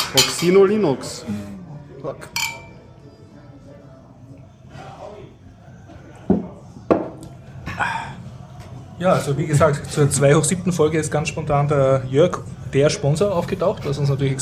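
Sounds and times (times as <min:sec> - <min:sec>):
speech: 0:00.1 - 0:02.4, 0:09.0 - 0:14.4
glasses clinking together in a toast: 0:02.3 - 0:02.9.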